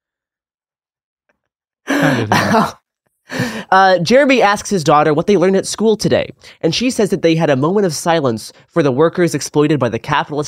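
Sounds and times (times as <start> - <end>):
person imitating a teacher's coughing fit: 1.9 - 2.8
speech: 2.1 - 10.4.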